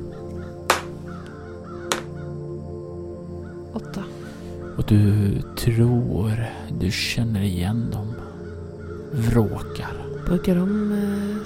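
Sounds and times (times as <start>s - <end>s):
crows cawing in flight above an old cabin: 0.0s - 6.7s, 7.6s - 11.4s
steady low droning background: 0.0s - 11.4s
speech: 4.8s - 8.2s, 9.1s - 11.4s.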